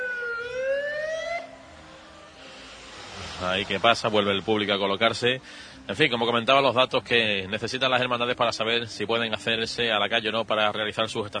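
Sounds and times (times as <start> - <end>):
ambulance siren wailing in a street: 0.0 - 5.9
faint street background: 0.0 - 11.3
speech: 3.4 - 11.3.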